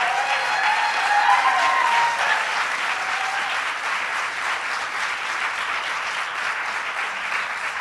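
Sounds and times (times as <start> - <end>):
whistles and cheers: 0.0 - 3.6
large crowd applauding in welcome of advocates: 0.0 - 7.7.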